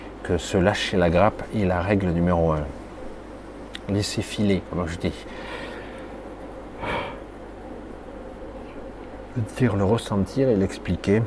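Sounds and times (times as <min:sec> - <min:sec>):
steady low hum: 0:00.0 - 0:11.2
speech: 0:00.3 - 0:02.8, 0:03.9 - 0:05.6, 0:09.4 - 0:11.2
person yawning: 0:06.8 - 0:07.2.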